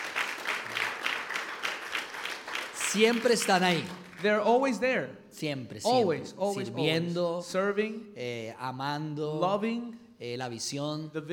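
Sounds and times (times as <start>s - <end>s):
audience applause: 0.0s - 4.4s
speech: 2.9s - 11.3s.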